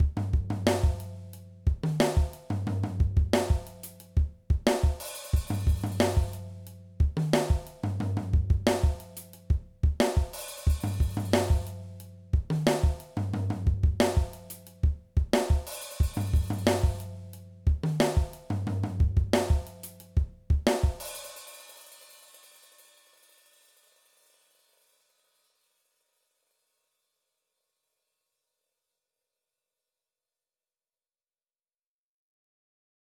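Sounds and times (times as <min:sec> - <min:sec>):
drum backbeat: 0:00.0 - 0:11.8, 0:12.4 - 0:21.2.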